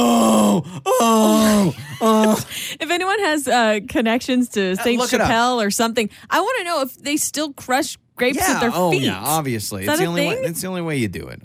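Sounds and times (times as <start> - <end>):
voice imitating a woman news reporter groaning after falling over: 0.0 - 2.5
speech: 3.0 - 11.4.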